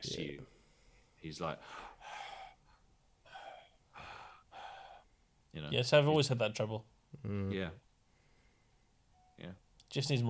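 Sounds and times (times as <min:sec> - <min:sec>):
speech: 0:01.2 - 0:02.0, 0:05.5 - 0:07.8, 0:09.4 - 0:10.2
voice imitating a man's heavy snore-like breathing: 0:01.6 - 0:05.0.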